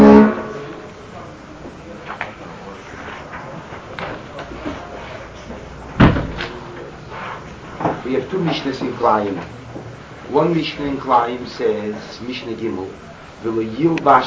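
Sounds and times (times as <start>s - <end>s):
faint rustles: 1.8s - 12.2s
door shutting: 5.9s - 9.9s
speech: 8.5s - 9.7s, 10.3s - 14.2s.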